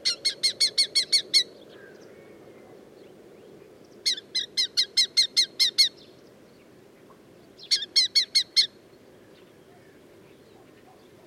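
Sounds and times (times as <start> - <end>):
red-footed falcon shrill calls: 0.0 - 1.5, 4.0 - 6.0, 7.6 - 8.8.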